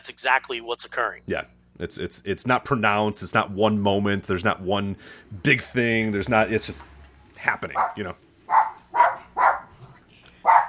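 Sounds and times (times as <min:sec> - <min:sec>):
speech: 0:00.0 - 0:08.6
dog barking: 0:07.8 - 0:09.8, 0:10.4 - 0:10.6.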